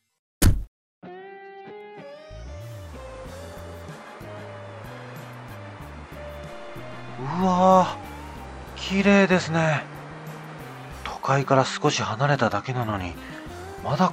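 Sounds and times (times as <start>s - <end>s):
sharp thump: 0.4s - 0.7s
music with steady tones and a stepping bass: 2.4s - 9.1s, 13.4s - 13.9s
rushing wash of ocean surf on a seashore: 3.9s - 11.0s
speech: 7.2s - 8.0s, 8.8s - 9.9s, 11.2s - 14.1s.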